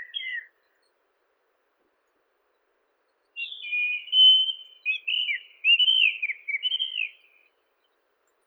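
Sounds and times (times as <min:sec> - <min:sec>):
Monticola gularis white-throated rock thrush singing: 0:00.0 - 0:00.5, 0:03.4 - 0:07.2.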